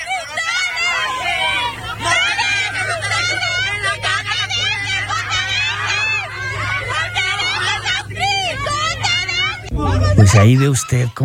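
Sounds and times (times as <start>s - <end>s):
laughter: 0.0s - 11.1s
children shouting and screaming during a fight: 0.0s - 11.2s
steady low rumble: 2.7s - 10.5s
speech: 10.3s - 11.2s.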